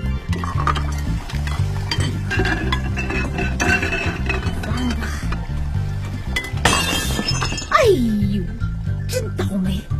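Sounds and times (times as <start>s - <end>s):
dishes and bowls being washed: 0.0s - 7.7s
steady low tonal background: 0.0s - 9.9s
crockery and utensils clinking and knocking: 0.3s - 5.5s, 6.2s - 7.8s.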